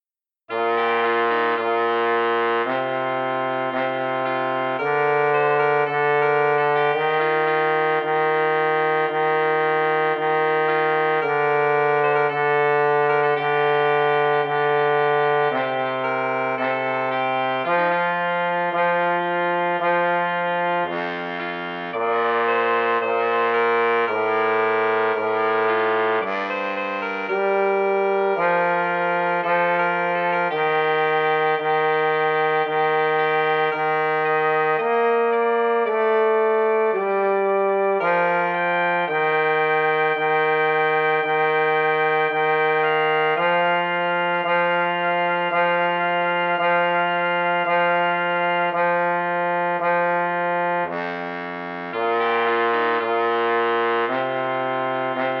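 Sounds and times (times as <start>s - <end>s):
oboe piece: 0.4s - 55.3s.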